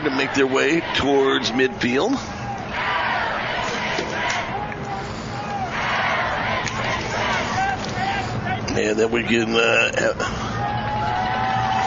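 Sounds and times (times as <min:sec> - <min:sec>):
speech: 0:00.0 - 0:02.4, 0:08.8 - 0:10.4
scattered shouts in a football stadium crowd: 0:00.0 - 0:09.5, 0:10.2 - 0:11.8
crowd murmur at a high school football game before kickoff: 0:00.0 - 0:11.8.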